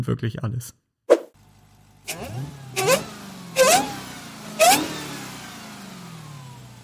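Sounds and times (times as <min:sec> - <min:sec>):
speech: 0:00.0 - 0:00.8, 0:02.1 - 0:03.9
car engine revving with throaty rumble: 0:01.4 - 0:06.8
high-pitched car supercharger whine: 0:01.4 - 0:06.8.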